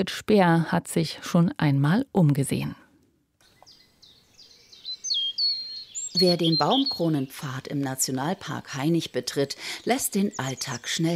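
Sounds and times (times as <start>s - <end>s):
speech: 0.0s - 2.8s, 6.2s - 11.1s
birds singing in a quiet forest: 3.4s - 11.1s.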